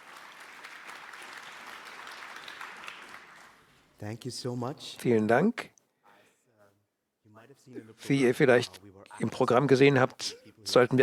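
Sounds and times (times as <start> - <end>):
audience at a conference talk applauding: 0.0 - 3.8
speech: 4.0 - 5.8, 7.7 - 11.0.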